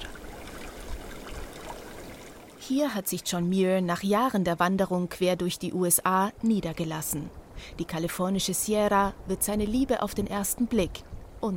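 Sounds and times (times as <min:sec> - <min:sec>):
river water trickling over stones along a meadow hiking trail in the California Sierra: 0:00.0 - 0:02.8
speech: 0:02.7 - 0:11.5.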